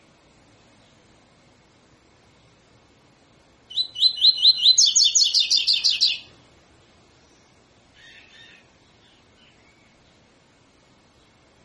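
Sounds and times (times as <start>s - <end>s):
double-collared seedeater tutor song with rising slurred notes and buzzy trill: 3.7s - 6.4s, 7.2s - 11.6s.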